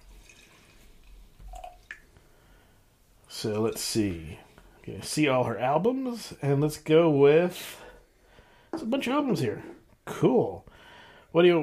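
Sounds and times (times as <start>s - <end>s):
water trickling and dripping inside a beer glass being rinsed: 0.0s - 2.1s
speech: 3.4s - 7.8s, 8.8s - 10.7s, 11.3s - 11.6s.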